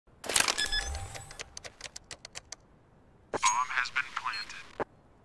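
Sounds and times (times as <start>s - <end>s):
C4 bomb being planted: 0.1s - 2.6s, 3.4s - 4.8s.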